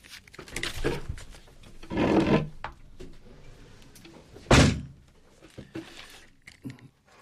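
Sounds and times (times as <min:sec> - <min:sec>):
studio door scraping and rumbling: 0:01.8 - 0:02.6
studio door thudding shut: 0:04.5 - 0:05.0.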